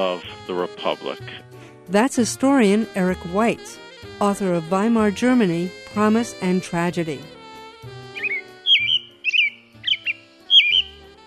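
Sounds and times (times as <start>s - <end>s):
speech: 0.0s - 7.4s
robins and other birds singing: 8.1s - 11.1s.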